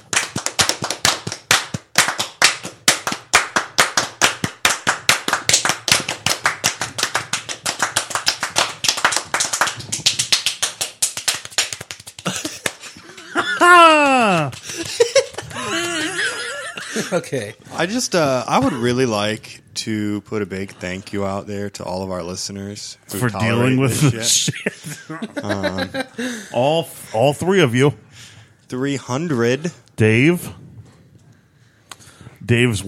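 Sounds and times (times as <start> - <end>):
fast steady hand clapping: 0.0 - 16.4
laughter: 12.2 - 17.5, 23.6 - 26.4
sliding vocal cheer: 13.2 - 16.4
speech: 17.0 - 28.0, 28.7 - 30.6, 32.5 - 32.8.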